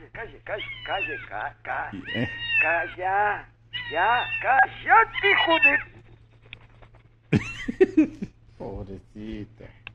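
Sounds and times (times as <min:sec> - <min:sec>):
low steady hum: 0:00.0 - 0:09.9
speech: 0:00.2 - 0:05.9, 0:07.3 - 0:09.8
cat meowing: 0:02.0 - 0:02.9, 0:03.8 - 0:05.9
laughter: 0:07.3 - 0:08.4.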